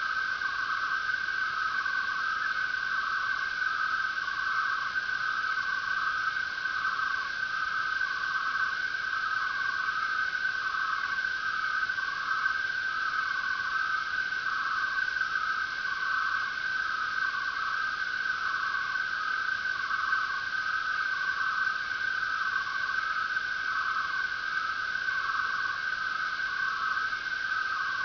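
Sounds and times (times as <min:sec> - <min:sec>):
many crickets chirping: 0:00.0 - 0:28.0.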